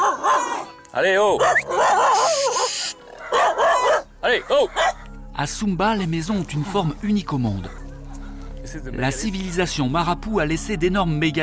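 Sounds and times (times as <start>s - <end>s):
dog excitedly yipping, barking and whining: 0.0s - 0.8s, 1.4s - 5.0s
speech: 1.0s - 2.6s, 3.6s - 7.8s, 8.7s - 11.4s.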